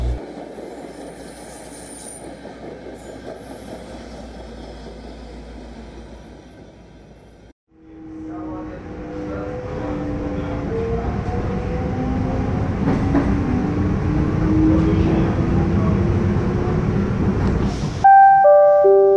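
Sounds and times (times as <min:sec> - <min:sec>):
train rumbling into a station platform: 0:00.0 - 0:07.5, 0:08.2 - 0:19.1
train wheel squeal: 0:00.2 - 0:07.4.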